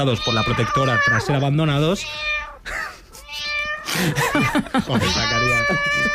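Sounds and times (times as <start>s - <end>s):
played-back cat meows: 0.0s - 2.6s, 3.2s - 3.9s, 5.0s - 6.1s
speech: 0.0s - 2.8s, 4.0s - 6.1s
laughter or chatter: 3.9s - 6.1s.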